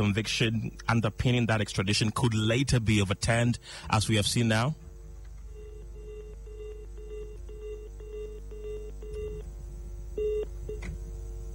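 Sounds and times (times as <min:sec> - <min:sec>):
speech: 0:00.0 - 0:04.8
low steady hum: 0:00.0 - 0:11.5
telephone keypad dialing tones: 0:05.5 - 0:09.4.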